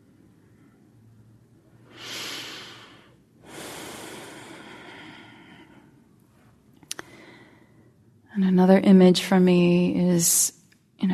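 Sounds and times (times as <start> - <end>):
slow deep breathing in a mindfulness meditation class: 1.8 - 8.2
speech: 8.4 - 11.1.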